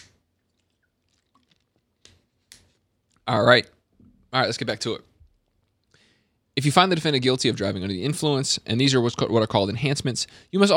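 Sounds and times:
sipping a drink: 0.0 - 2.4
swallowing: 0.4 - 2.0
speech: 3.3 - 5.1, 6.6 - 10.7.

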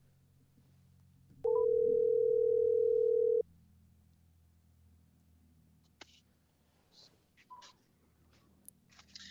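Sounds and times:
phone ringback tone on an outgoing call: 1.5 - 3.4.

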